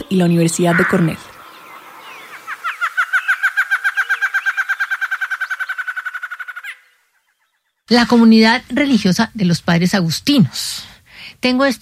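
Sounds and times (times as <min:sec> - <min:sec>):
barred antshrike trilling: 0:00.0 - 0:07.8
speech: 0:00.1 - 0:01.3, 0:07.9 - 0:11.8.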